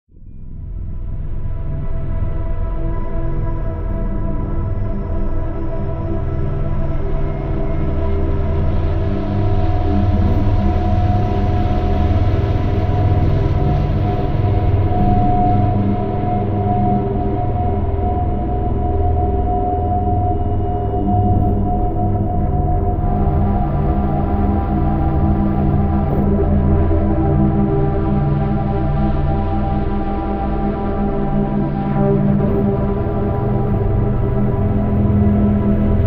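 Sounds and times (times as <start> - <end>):
drone: 0.2 - 36.0.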